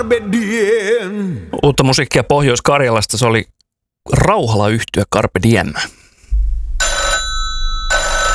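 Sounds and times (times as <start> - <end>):
speech: 0.0 - 6.0
low thump: 6.3 - 7.9
telephone ringing for an incoming call: 6.8 - 8.3.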